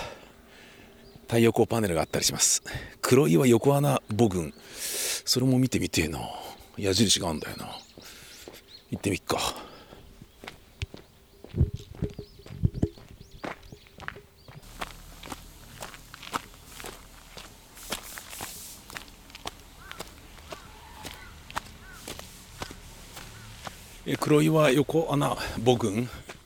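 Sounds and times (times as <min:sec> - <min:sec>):
speech: 0:01.3 - 0:08.1, 0:08.9 - 0:09.7, 0:24.1 - 0:26.2
footsteps walking along an outdoor path toward hillside cave tombs: 0:05.9 - 0:26.4.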